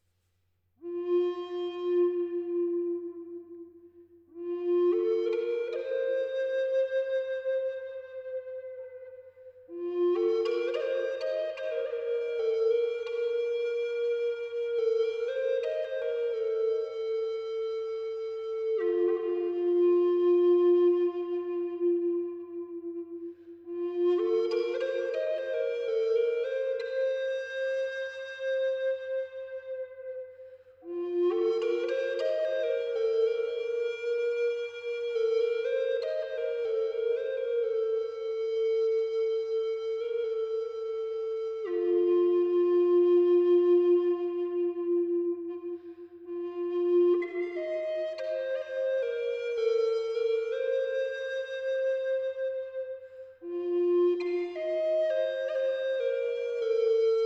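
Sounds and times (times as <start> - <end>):
low F sharp note on a hazel branch flute at 432Hz: 0.8 - 57.2.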